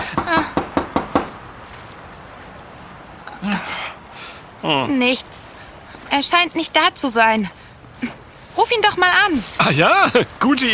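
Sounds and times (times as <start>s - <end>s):
sharp knocks on a door: 0.2s - 1.4s
speech: 4.6s - 5.5s, 6.1s - 10.7s.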